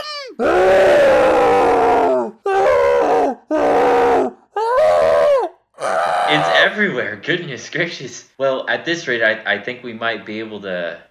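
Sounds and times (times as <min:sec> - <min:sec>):
person screaming in frustration: 0:00.0 - 0:06.7
speech: 0:06.8 - 0:11.1.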